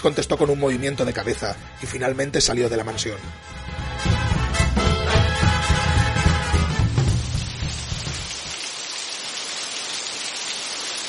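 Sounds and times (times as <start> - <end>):
speech: 0.0 - 4.9
heavy rain falling: 5.6 - 11.0.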